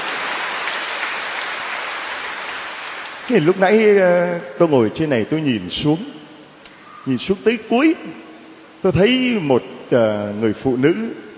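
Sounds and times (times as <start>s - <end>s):
large crowd applauding: 0.0s - 3.5s
speech: 3.3s - 6.2s, 7.0s - 8.2s, 8.8s - 11.2s.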